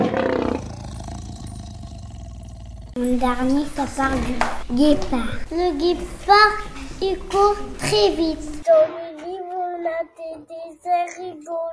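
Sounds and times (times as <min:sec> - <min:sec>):
lion roaring: 0:00.0 - 0:03.1
speech: 0:03.1 - 0:09.0.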